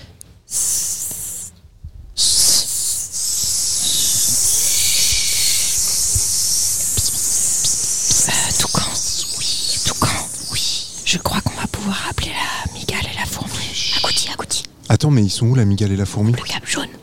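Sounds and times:
people imitating a snake's hiss: 0.5s - 1.5s, 2.2s - 14.6s
speech: 15.1s - 16.9s.

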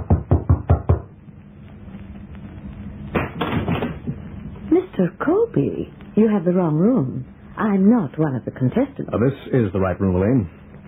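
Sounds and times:
quick loud knocks on a wooden door: 0.0s - 1.1s
speech: 5.0s - 10.8s.

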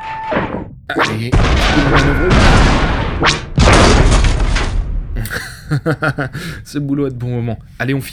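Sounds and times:
spaceship cannon blasts: 0.0s - 5.3s
booming explosions: 0.3s - 5.3s
speech: 1.0s - 3.4s, 5.3s - 8.1s
sharp swooping burst: 1.0s - 4.1s
laughter: 1.8s - 2.5s, 5.2s - 6.6s.

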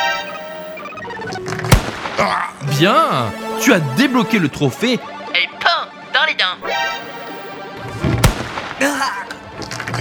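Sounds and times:
sustained electronic tones: 0.0s - 1.7s, 6.6s - 8.0s
gunshots fired in a video game: 1.7s - 2.3s, 6.6s - 8.8s
speech: 2.2s - 5.6s.

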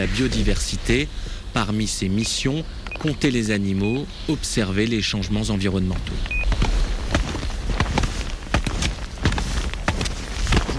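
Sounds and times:
speech: 0.0s - 6.6s
faint hiss: 0.0s - 10.7s
touring skis sliding through powder snow in the northern French Alps: 6.5s - 10.7s.

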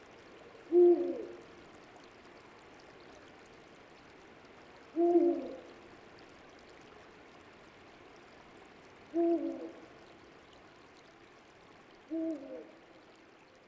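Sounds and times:
faint high ticks: 0.0s - 3.4s, 5.0s - 10.0s
soft steady hiss: 0.0s - 12.8s
Eurasian eagle-owl Bubo bubo hooting: 5.0s - 5.7s, 9.1s - 9.8s.

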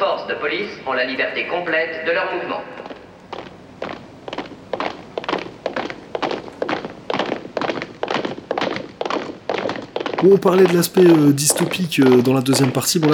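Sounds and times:
speech: 0.0s - 2.9s, 10.2s - 13.1s
heavy boots marching on the ground: 2.8s - 13.1s.

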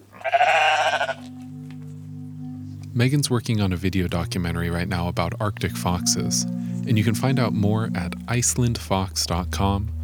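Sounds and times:
sheep bleating in Iceland: 0.0s - 1.3s
low steady hum: 0.7s - 10.0s
speech: 3.0s - 10.0s.

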